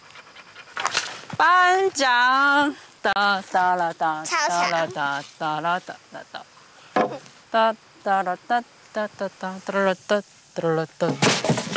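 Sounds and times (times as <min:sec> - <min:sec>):
dog panting in quick breathy huffs: 0:00.0 - 0:01.0
speech: 0:01.4 - 0:06.6, 0:07.5 - 0:11.5.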